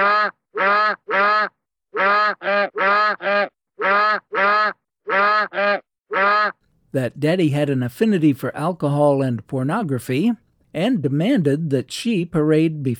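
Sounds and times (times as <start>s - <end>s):
African goose honking: 0.0s - 6.6s
speech: 0.2s - 12.9s.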